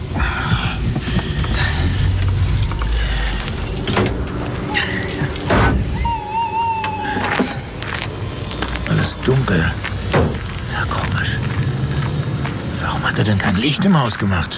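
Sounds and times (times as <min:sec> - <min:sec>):
car engine rumbling as the car pulls up and parks: 0:00.0 - 0:06.2, 0:07.2 - 0:14.5
clunks: 0:00.9 - 0:06.0, 0:09.8 - 0:10.6
metallic jangling: 0:01.7 - 0:05.8
speech: 0:13.2 - 0:14.5.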